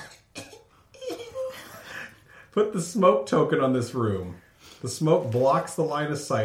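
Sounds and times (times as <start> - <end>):
short raspy coughs trailing into a throaty rasp: 0.0 - 0.8
speech: 2.6 - 6.4.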